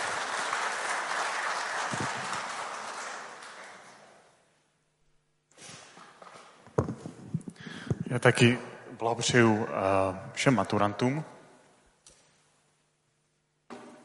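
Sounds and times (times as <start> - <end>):
crowd applause: 0.0 - 4.3
speech: 8.2 - 11.4.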